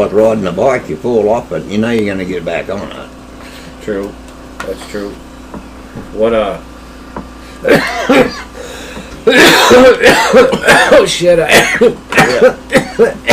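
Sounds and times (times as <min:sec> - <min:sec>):
speech: 0:00.0 - 0:03.2, 0:03.9 - 0:05.6, 0:06.2 - 0:13.3
person coughing fit with throat clearing: 0:07.6 - 0:08.6, 0:09.2 - 0:13.3
person chuckling: 0:07.6 - 0:11.1, 0:11.8 - 0:13.3.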